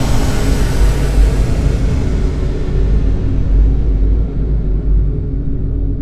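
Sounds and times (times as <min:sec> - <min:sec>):
long boom: 0:00.0 - 0:05.9.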